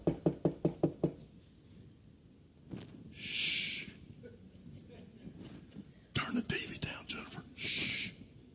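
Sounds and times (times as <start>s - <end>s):
sharp knocking on a door: 0.0s - 1.2s
hushed whispering: 6.2s - 8.2s.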